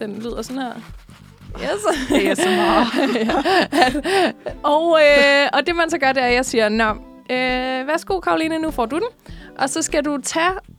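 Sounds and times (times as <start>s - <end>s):
soft papery scrapes of a toilet paper roll: 0.0s - 2.4s
toilet paper roll being handled: 0.0s - 4.0s
speech: 0.0s - 10.7s
light thumps of a toilet paper roll: 0.2s - 10.7s
laughter: 1.6s - 4.5s.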